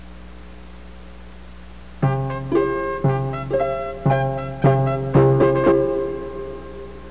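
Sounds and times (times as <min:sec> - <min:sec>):
harp: 0:02.0 - 0:07.0.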